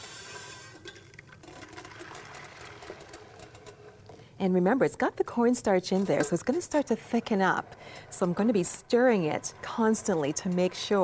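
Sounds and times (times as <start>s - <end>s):
liquid containing cornstarch poured into a hot pan on a high burner: 0.0s - 4.1s
speech: 4.4s - 11.0s.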